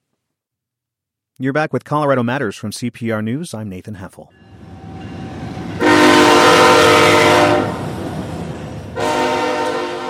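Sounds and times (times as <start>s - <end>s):
speech: 1.4s - 4.5s
loud blaring train horn blasts: 4.4s - 10.0s.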